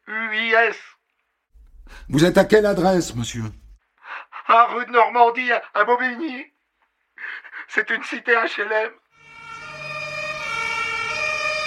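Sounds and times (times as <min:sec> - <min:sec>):
speech: 0:00.1 - 0:01.0, 0:01.9 - 0:03.6, 0:04.5 - 0:06.5, 0:07.2 - 0:09.0
rescue vehicle siren wailing on cardiac emergency call: 0:09.2 - 0:11.6.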